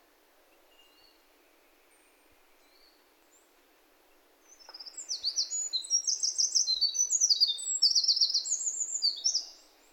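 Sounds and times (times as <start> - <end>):
bird song of high thin varied notes with slurs and trills: 0.5 - 3.5, 4.4 - 9.9.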